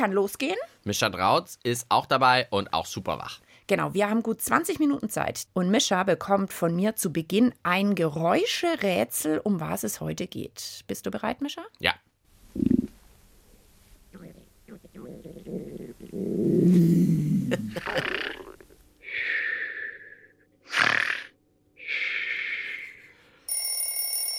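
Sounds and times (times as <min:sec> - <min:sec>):
speech: 0:00.0 - 0:12.0
stomach growling: 0:12.5 - 0:13.0, 0:14.1 - 0:18.8, 0:20.7 - 0:21.4
person snoring: 0:14.1 - 0:23.2
alarm clock ringing with a metallic bell: 0:23.5 - 0:24.3.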